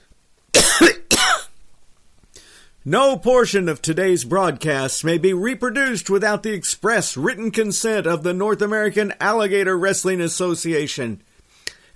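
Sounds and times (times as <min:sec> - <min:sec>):
dog coughing harshly: 0:00.6 - 0:01.6
speech: 0:02.8 - 0:11.3.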